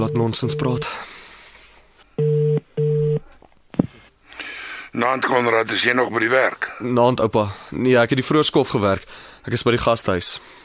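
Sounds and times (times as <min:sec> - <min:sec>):
telephone ringing tone as a call is placed: 0:00.0 - 0:01.0, 0:02.2 - 0:03.3
speech: 0:00.0 - 0:01.1, 0:05.0 - 0:10.6.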